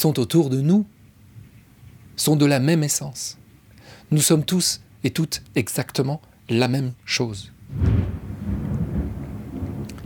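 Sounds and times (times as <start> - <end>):
speech: 0.0 - 1.0, 2.2 - 3.4, 4.1 - 8.0
faint hiss of rain: 0.0 - 10.0
rolling thunder from a storm: 7.7 - 10.0.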